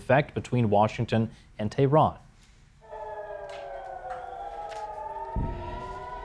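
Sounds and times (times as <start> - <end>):
speech: 0.1 - 2.2
air raid sirens wailing in northern Israel during an Iranian ballistic missile strike: 2.8 - 6.2
brief low thump: 5.3 - 6.2.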